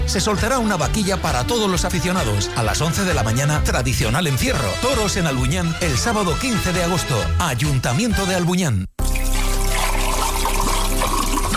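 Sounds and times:
speech: 0.1s - 9.1s
natural mineral water trickling and splashing: 9.0s - 11.5s.

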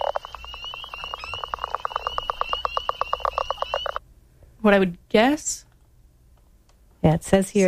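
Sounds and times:
chorus of spring peeper frogs calling: 0.0s - 4.0s
speech: 4.6s - 5.7s, 7.0s - 7.6s.

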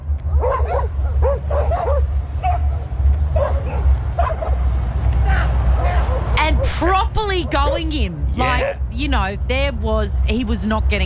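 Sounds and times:
low rumble: 0.0s - 11.0s
dogs barking and yipping while chasing a man: 0.2s - 8.7s
speech: 7.4s - 11.0s.

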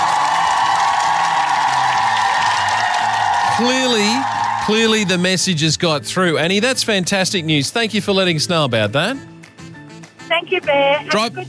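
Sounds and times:
dense crowd cheering and applauding: 0.0s - 5.6s
speech: 3.6s - 9.3s, 10.4s - 11.4s.

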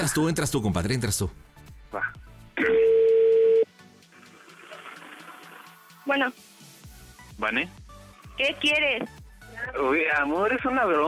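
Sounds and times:
speech: 0.0s - 2.8s, 6.1s - 6.4s, 7.4s - 7.8s, 8.4s - 11.0s
telephone ringback tone while a call is dialed: 2.7s - 3.6s.

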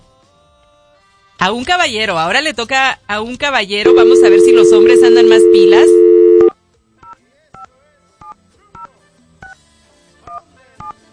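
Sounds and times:
speech: 1.4s - 6.0s
faint low sounds: 3.9s - 6.5s
telephone keypad touch-tone beeps while dialing a phone number: 3.9s - 6.5s.

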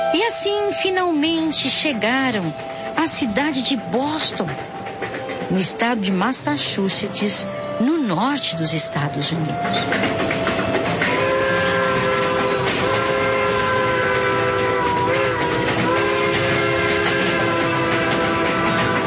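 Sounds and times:
train wagons rumbling into a busy station in Boston: 0.0s - 19.0s
speech: 0.4s - 4.9s, 5.5s - 10.6s
train horn or whistle at a busy station in Boston: 9.7s - 19.0s.

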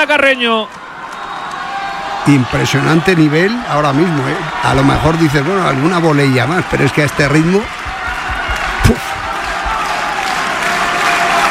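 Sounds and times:
speech: 0.0s - 0.8s, 2.2s - 7.8s
large tennis stadium crowd applauding: 0.0s - 11.4s.

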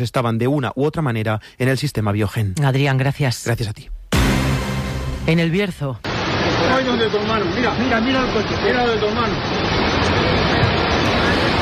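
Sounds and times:
speech: 0.0s - 4.0s, 5.2s - 10.2s
torrential floodwater from a storm roaring: 6.0s - 11.6s.

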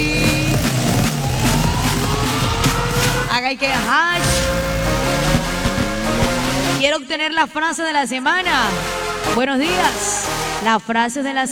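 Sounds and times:
brand-new Suzuki motorcycle engine revving: 0.0s - 6.9s
speech: 3.6s - 4.7s, 6.8s - 11.5s.

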